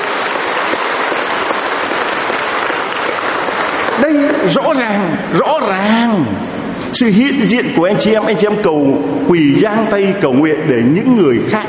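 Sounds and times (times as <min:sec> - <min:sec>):
large crowd clapping: 0:00.0 - 0:04.8
speech: 0:04.0 - 0:11.6.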